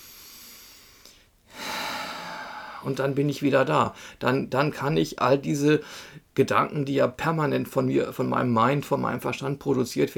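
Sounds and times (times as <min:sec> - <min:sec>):
slow breaths: 0:00.0 - 0:03.0, 0:03.9 - 0:04.2, 0:05.8 - 0:06.3
speech: 0:02.8 - 0:10.1.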